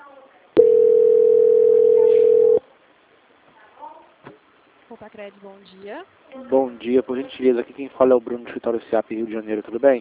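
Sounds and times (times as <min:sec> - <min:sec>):
telephone call transfer tone: 0:00.6 - 0:02.6
speech: 0:05.0 - 0:09.9.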